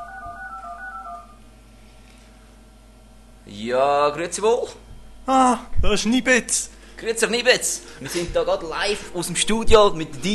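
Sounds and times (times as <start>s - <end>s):
DTMF touch-tone beeps of a telephone number dialed in a radio studio: 0.0s - 1.4s
low hum: 0.0s - 10.3s
speech: 3.5s - 10.3s.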